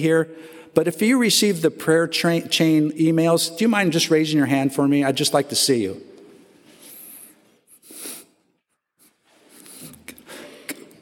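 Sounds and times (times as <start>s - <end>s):
speech: 0.0s - 6.1s
person sneezing during a church service: 9.7s - 11.0s.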